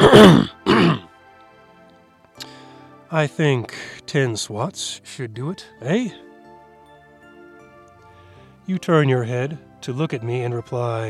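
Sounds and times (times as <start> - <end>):
exaggerated gravelly throat clearing: 0.0 - 1.1
speech: 0.2 - 1.0, 3.1 - 6.2, 8.7 - 11.0.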